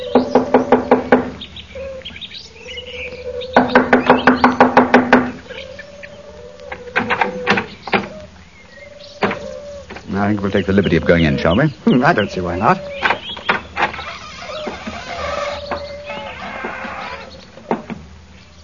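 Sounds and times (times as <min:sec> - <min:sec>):
faint birdsong chirping: 0:00.0 - 0:18.6
rapid knocking on a wooden door: 0:00.2 - 0:01.4, 0:03.6 - 0:05.4
speech: 0:10.4 - 0:13.1.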